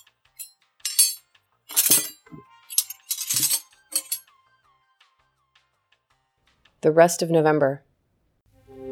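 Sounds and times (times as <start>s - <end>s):
silverware clinking and clattering while being rolled: 0.0s - 4.2s
speech: 6.8s - 7.9s.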